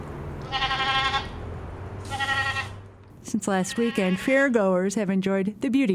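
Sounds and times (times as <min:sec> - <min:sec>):
low steady livestock barn hum: 0:00.0 - 0:05.9
prize goat bleating while being bathed in a breezy livestock barn: 0:00.4 - 0:01.4, 0:02.0 - 0:02.8, 0:03.6 - 0:04.5
speech: 0:03.3 - 0:05.9.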